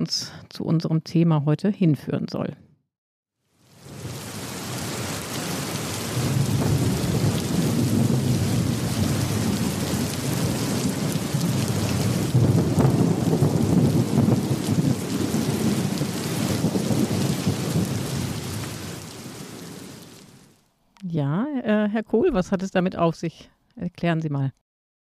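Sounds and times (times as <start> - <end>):
speech: 0.0 - 2.6, 21.2 - 24.6
steady heavy rain in a thunderstorm: 3.5 - 20.6
deep rolling thunder: 3.8 - 20.3.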